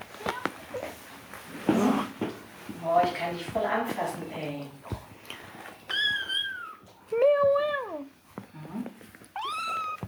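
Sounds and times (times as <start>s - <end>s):
speech: 2.9s - 4.9s
cats fighting, yowling and meowing: 5.9s - 8.0s, 9.4s - 10.0s.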